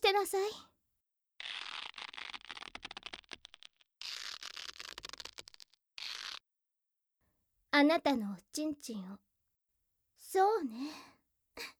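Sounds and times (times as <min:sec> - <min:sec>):
speech: 0:00.1 - 0:00.7, 0:07.8 - 0:09.3, 0:10.3 - 0:11.7
duct tape pulled off the roll tearing: 0:01.4 - 0:06.5.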